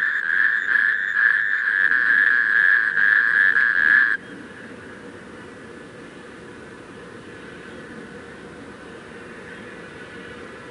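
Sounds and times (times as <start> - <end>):
natterjack toads in a rattling chorus, churring trill: 0.0 - 4.2.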